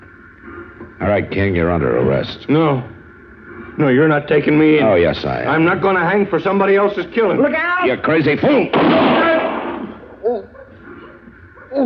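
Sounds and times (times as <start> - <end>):
speech: 1.0 - 3.0, 3.8 - 9.3
gunshot fired by a lawman on a man resisting arrest: 8.7 - 10.2.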